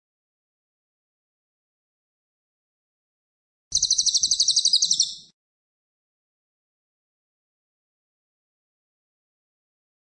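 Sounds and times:
cililin rapidly pulsed high-pitched trill: 0:03.7 - 0:05.3.

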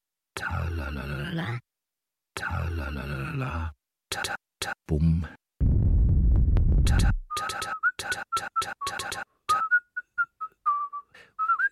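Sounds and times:
speech: 0:00.4 - 0:01.7, 0:02.4 - 0:05.4, 0:06.9 - 0:09.4
loud low rumbling noise: 0:05.6 - 0:06.9
melodic whistling: 0:07.3 - 0:11.7.

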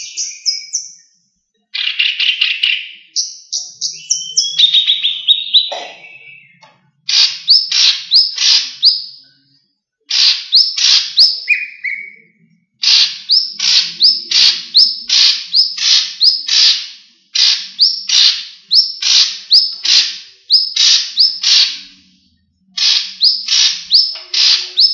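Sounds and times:
leafbird song of raspy notes and rising whistles: 0:00.0 - 0:24.9.

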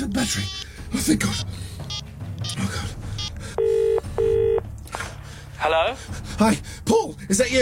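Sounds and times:
speech: 0:00.0 - 0:03.0, 0:05.6 - 0:07.6
mobile phone keypad tones dialing a number: 0:03.2 - 0:04.6.

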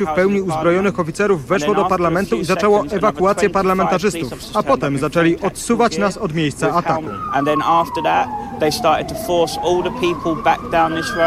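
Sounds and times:
speech: 0:00.0 - 0:11.2
police and ambulance sirens in central London: 0:06.6 - 0:11.2.

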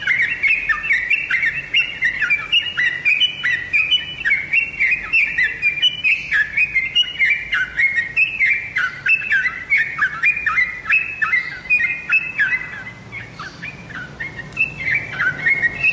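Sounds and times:
Oriental magpie-robin singing bright whistled notes: 0:00.0 - 0:15.9.

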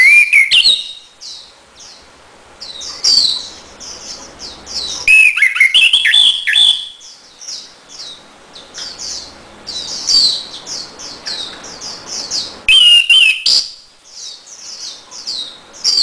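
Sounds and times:
Orange-headed thrush singing a varied whistled phrase: 0:00.0 - 0:01.1, 0:05.1 - 0:07.1, 0:12.7 - 0:13.8
constant high-pitched chirps from other birds: 0:00.0 - 0:02.0, 0:02.6 - 0:16.0.

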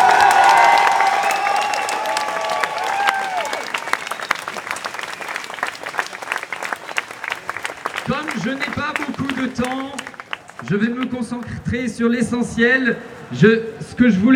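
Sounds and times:
crowd clapping in support of activists on trial: 0:00.0 - 0:11.6
speech: 0:10.7 - 0:14.3.

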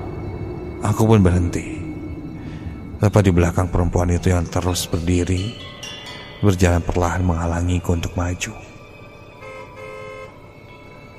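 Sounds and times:
continuous road noise: 0:00.0 - 0:11.1
speech: 0:00.8 - 0:01.8, 0:03.0 - 0:08.7
car horn honking at a woman walking in the road: 0:09.4 - 0:10.4.

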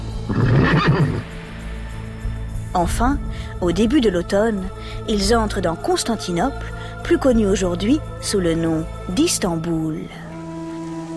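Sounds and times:
horse neighing in stifling summer heat: 0:00.3 - 0:01.3
speech: 0:00.3 - 0:01.4, 0:02.8 - 0:10.2.

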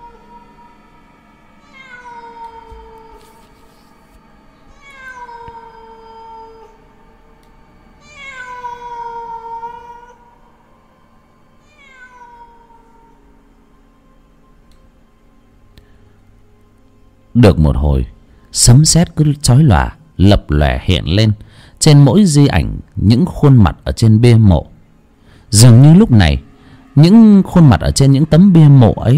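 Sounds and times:
stray cat meowing at night: 0:01.6 - 0:03.4, 0:04.7 - 0:06.8, 0:08.0 - 0:10.2, 0:11.6 - 0:13.2
speech: 0:17.4 - 0:24.7, 0:25.5 - 0:29.1.

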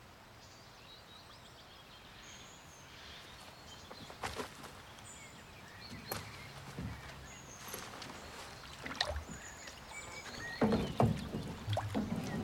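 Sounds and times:
oar strokes splashing as a girl rows a boat: 0:05.9 - 0:12.4
water gurgling: 0:08.6 - 0:12.4.

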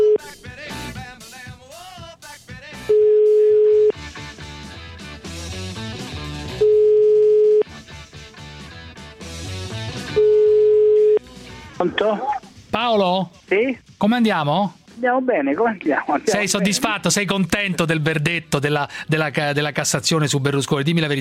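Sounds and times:
music: 0:00.0 - 0:07.0, 0:07.6 - 0:21.1
telephone ringback tones on the line: 0:02.9 - 0:03.9, 0:06.6 - 0:07.6, 0:10.2 - 0:11.2
speech: 0:12.1 - 0:21.1.

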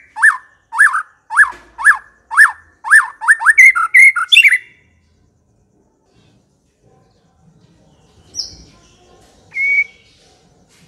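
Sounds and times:
white-rumped shama singing looping whistled notes: 0:00.0 - 0:04.8, 0:09.5 - 0:10.0.

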